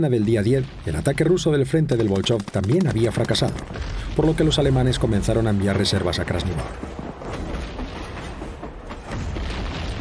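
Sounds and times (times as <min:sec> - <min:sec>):
speech: 0:00.0 - 0:07.0
train rolling on rails: 0:05.5 - 0:09.7.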